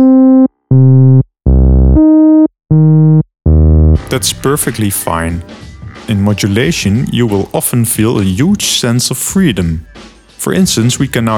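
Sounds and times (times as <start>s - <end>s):
sustained synthesizer keyboard notes through low-pass filter: 0.0s - 7.7s
speech: 4.1s - 11.3s.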